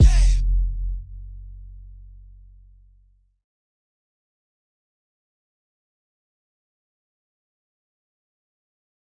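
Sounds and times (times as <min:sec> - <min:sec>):
punchy hip hop kick drum: 0:00.0 - 0:00.6.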